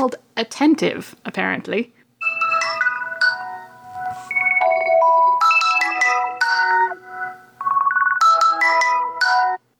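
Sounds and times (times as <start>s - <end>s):
speech: 0.0s - 2.0s
default Android Galaxy phone ringtone: 2.2s - 9.6s.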